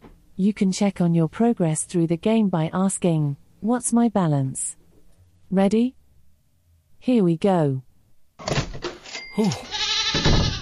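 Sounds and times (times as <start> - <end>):
speech: 0.4 - 4.8, 5.5 - 6.0, 7.0 - 7.9, 9.4 - 10.3
goat bleating: 9.4 - 10.6.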